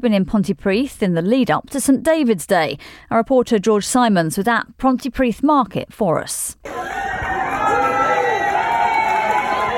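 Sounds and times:
speech: 0.0s - 7.1s
large crowd cheering and calling out: 6.6s - 9.7s.

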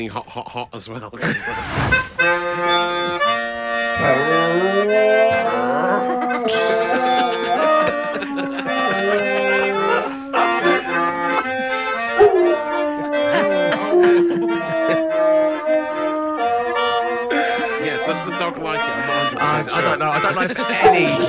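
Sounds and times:
speech: 0.0s - 3.2s, 4.0s - 7.0s, 19.6s - 21.2s
laughter: 1.2s - 1.7s, 5.1s - 15.9s, 16.5s - 21.2s
loud steady upbeat song: 1.6s - 21.2s
dog howling along with an upbeat song: 4.0s - 11.1s, 12.0s - 17.8s, 20.8s - 21.2s.

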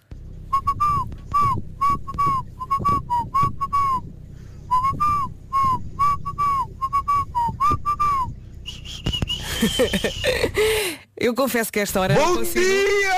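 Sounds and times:
person whistling a song melody: 0.5s - 4.0s, 4.7s - 10.4s
breathy laughter: 9.4s - 11.0s
speech: 9.8s - 13.1s.

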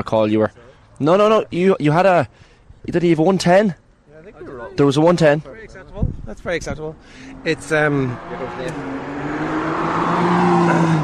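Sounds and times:
speech: 0.0s - 9.5s
road and wind noise from a car on a track: 0.0s - 11.0s
car engine droning while driving a lap on a track: 7.0s - 11.0s.

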